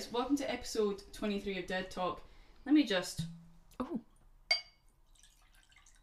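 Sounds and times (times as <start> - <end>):
speech: 0.3 - 4.0
bright glass clink: 4.5 - 4.9
gin being poured into a glass: 4.9 - 5.9.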